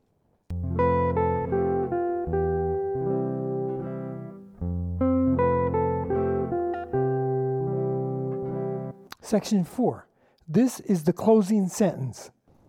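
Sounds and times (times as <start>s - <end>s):
slow sustained instrumental melody with rich harmonic chords: 0.5s - 9.1s
speech: 9.3s - 12.4s.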